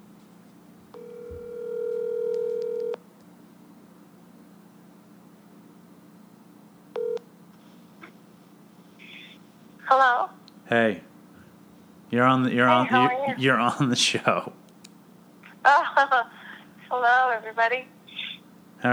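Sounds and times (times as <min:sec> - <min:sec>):
outgoing call ringback tone: 0:01.0 - 0:03.0, 0:07.0 - 0:07.2
speech: 0:09.9 - 0:11.1, 0:12.1 - 0:14.6, 0:17.0 - 0:17.9.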